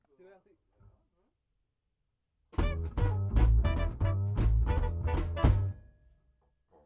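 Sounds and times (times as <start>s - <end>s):
guitar riff break: 2.6s - 5.8s.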